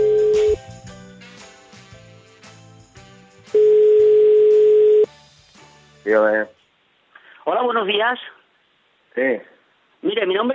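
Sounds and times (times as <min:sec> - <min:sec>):
telephone tone while dialling a call center: 0:00.0 - 0:00.6, 0:03.6 - 0:05.1
speech: 0:06.1 - 0:06.5, 0:07.6 - 0:08.4, 0:09.2 - 0:10.5.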